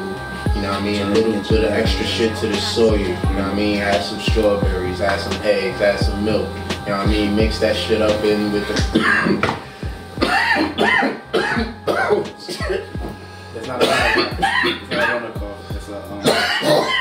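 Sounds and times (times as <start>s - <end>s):
speech: 0.6s - 9.7s
harsh raspy hacking coughing fit after smoking weed: 8.8s - 9.6s, 10.2s - 13.2s, 13.8s - 15.4s, 16.2s - 16.9s
throat clearing: 9.0s - 9.6s, 10.2s - 13.1s, 13.8s - 15.3s, 16.2s - 16.9s.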